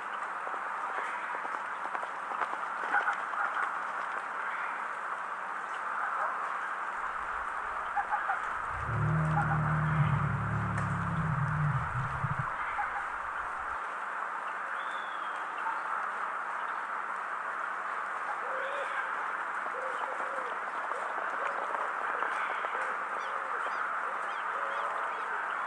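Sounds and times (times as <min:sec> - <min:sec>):
steady rain outside a barn at night: 0:00.0 - 0:25.6
deep rumbling thud of horses running around scared: 0:08.6 - 0:12.6
faint chirps: 0:08.6 - 0:13.7.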